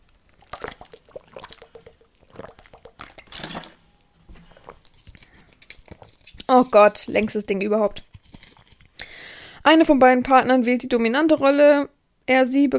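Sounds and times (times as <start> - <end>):
person sipping and swallowing water: 0.0 - 6.2
speech: 6.5 - 8.1, 9.7 - 12.7.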